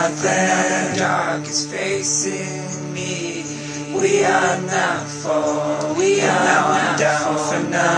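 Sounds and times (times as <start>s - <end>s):
folksy vocals: 0.0s - 7.9s.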